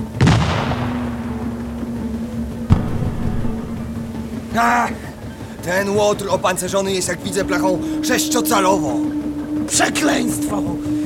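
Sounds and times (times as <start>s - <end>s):
heavy boom of gunfire from a frigate shooting at a sea monster: 0.0s - 4.4s
steady low hum: 0.0s - 11.0s
sharp abrupt crack of gunfire from a frigate: 0.2s - 1.3s
speech: 4.6s - 5.0s, 5.6s - 11.0s.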